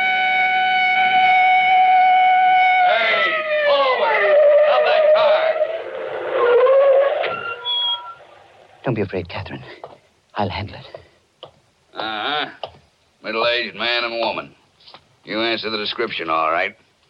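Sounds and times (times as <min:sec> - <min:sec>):
police car siren: 0:00.0 - 0:08.3
speech: 0:08.9 - 0:11.0, 0:13.3 - 0:14.6, 0:15.2 - 0:16.8.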